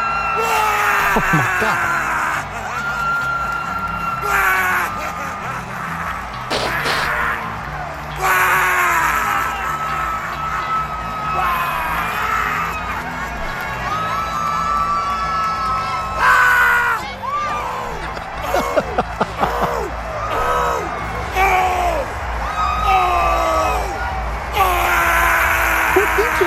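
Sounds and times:
noisy crowd-like background: 0.0s - 26.4s
laughter: 0.4s - 7.5s, 8.1s - 14.9s, 16.2s - 21.2s, 25.6s - 26.4s
man yelling and screaming in celebration: 1.1s - 1.8s
speech: 1.2s - 2.1s.

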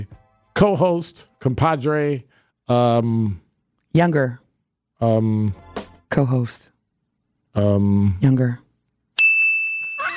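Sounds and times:
speech: 0.6s - 4.4s, 5.0s - 6.7s, 7.6s - 8.6s
bright bell ding: 9.2s - 10.1s.

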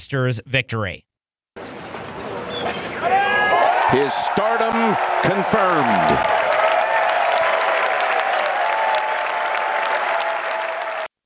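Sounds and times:
speech: 0.1s - 1.1s, 3.9s - 6.4s
large outdoor golf gallery clapping for final-round victory: 3.0s - 11.1s.

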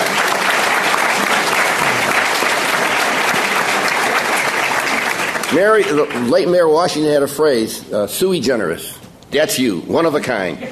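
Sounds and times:
sustained applause from a large audience: 0.0s - 6.6s
speech: 5.5s - 10.7s.

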